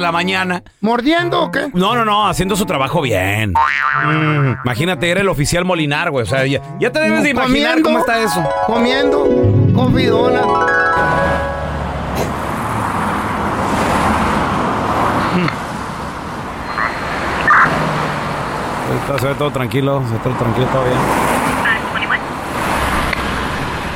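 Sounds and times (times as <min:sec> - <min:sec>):
speech: 0:00.0 - 0:11.2, 0:19.0 - 0:21.3
red sports car engine and road noise on a road at night: 0:11.5 - 0:23.9.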